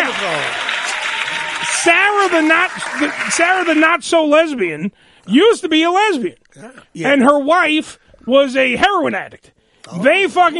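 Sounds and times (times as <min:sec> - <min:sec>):
applause: 0:00.0 - 0:04.3
speech: 0:00.2 - 0:00.7, 0:01.7 - 0:10.5.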